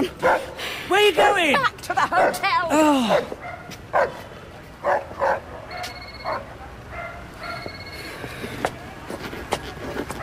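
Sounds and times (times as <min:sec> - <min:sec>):
dog barking and yipping: 0:00.2 - 0:00.5, 0:03.1 - 0:04.2, 0:04.8 - 0:07.8
speech: 0:01.1 - 0:03.4, 0:04.0 - 0:05.0.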